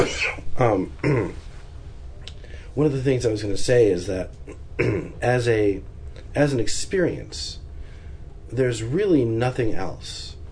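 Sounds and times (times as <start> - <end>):
person coughing harshly: 0.0 - 0.4, 1.0 - 1.4, 4.5 - 5.2
speech: 0.3 - 1.5, 2.8 - 7.6, 8.5 - 10.4.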